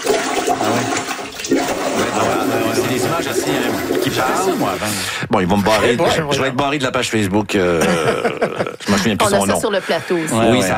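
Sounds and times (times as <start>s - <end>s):
toilet bowl water surging back up during heavy rain: 0.0s - 5.0s
speech: 0.7s - 1.0s, 2.2s - 10.7s
laughter: 7.6s - 10.7s.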